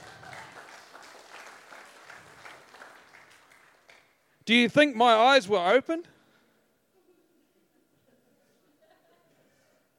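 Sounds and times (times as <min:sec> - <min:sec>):
audience applauding: 0:00.0 - 0:04.2
speech: 0:04.5 - 0:06.1.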